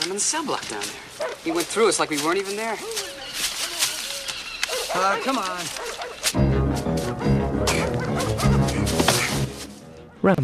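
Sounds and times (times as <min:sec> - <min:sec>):
speech: 0:00.2 - 0:03.3, 0:04.9 - 0:06.4, 0:10.2 - 0:10.4
tracking dogs barking during a manhunt through hilly woods: 0:01.1 - 0:01.8, 0:02.8 - 0:10.3.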